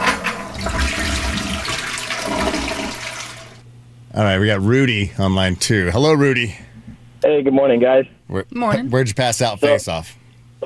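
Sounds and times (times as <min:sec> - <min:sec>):
toilet flushing: 0:00.0 - 0:03.6
speech: 0:04.2 - 0:06.6, 0:07.3 - 0:10.6.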